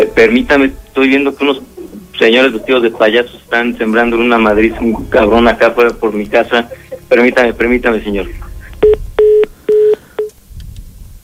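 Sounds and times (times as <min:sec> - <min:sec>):
faint low noise: 0:00.0 - 0:11.2
speech: 0:00.1 - 0:09.0
electronic beeps as a phone call cuts off: 0:08.8 - 0:10.3.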